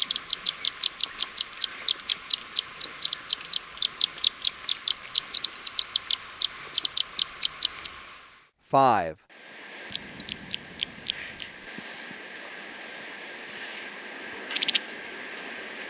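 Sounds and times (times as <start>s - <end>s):
Andean tit-spinetail high-pitched calls: 0.0s - 8.4s, 9.9s - 11.6s, 14.5s - 14.9s
soft hiss: 0.0s - 8.5s, 9.3s - 15.8s
speech: 8.7s - 9.2s.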